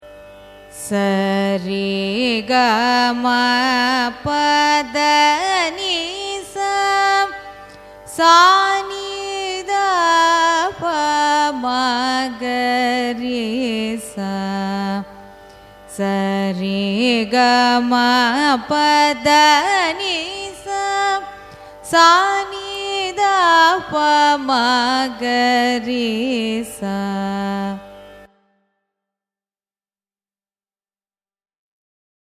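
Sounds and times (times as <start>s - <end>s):
carnatic raga ascending and descending scale: 0.0s - 28.8s.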